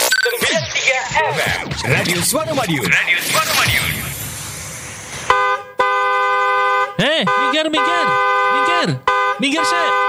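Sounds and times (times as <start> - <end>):
speech: 0.9 - 4.2, 7.0 - 10.0
rushing noise: 1.4 - 5.6
car horn honking: 5.3 - 10.0.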